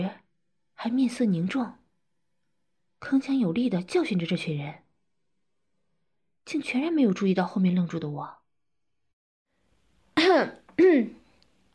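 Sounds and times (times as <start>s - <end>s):
speech: 0.0s - 0.2s, 0.8s - 1.8s, 3.0s - 4.8s, 6.4s - 8.4s, 10.2s - 11.2s
dry throat-clearing coughs from an annoyed adult: 10.2s - 11.2s.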